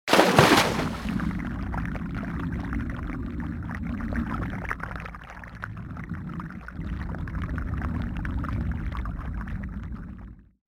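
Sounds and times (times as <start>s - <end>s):
athlete single dive underwater: 0.0s - 10.6s.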